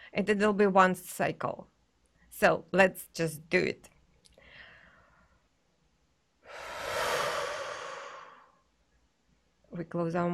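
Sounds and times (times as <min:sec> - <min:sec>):
speech: 0:00.1 - 0:01.7, 0:02.4 - 0:03.9, 0:09.7 - 0:10.3
soft breathy sound: 0:04.4 - 0:05.5, 0:06.4 - 0:08.7
long breath blown out through the mouth in a breathing exercise: 0:06.5 - 0:08.6.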